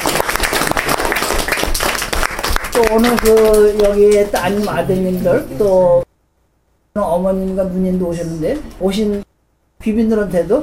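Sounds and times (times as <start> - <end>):
audience applause at an appointment ceremony: 0.0 - 4.9
speech: 2.8 - 6.1, 7.0 - 10.6.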